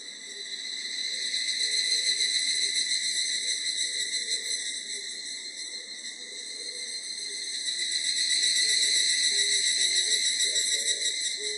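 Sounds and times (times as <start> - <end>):
evening cicada higurashi trilling: 0.0 - 11.5.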